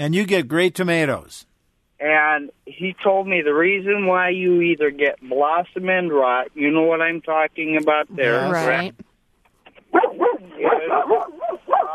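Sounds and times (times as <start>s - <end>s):
speech: 0.0s - 9.0s, 9.9s - 11.9s
two dogs barking and yipping: 9.9s - 11.9s.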